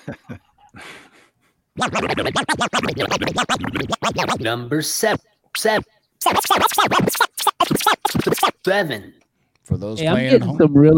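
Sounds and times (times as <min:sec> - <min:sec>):
speech: 0:00.0 - 0:00.4, 0:01.8 - 0:10.9
laughter: 0:00.0 - 0:00.9
DJ turntable record scratching: 0:01.8 - 0:08.9.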